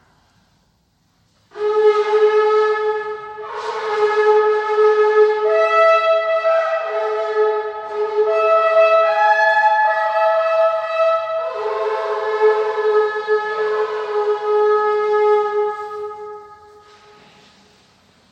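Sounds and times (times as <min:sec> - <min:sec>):
large shofar ram's horn blown in long brassy blasts: 0:01.5 - 0:17.4.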